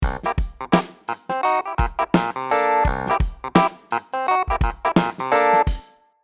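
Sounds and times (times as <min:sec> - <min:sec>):
clavinet groove: 0:00.0 - 0:05.9.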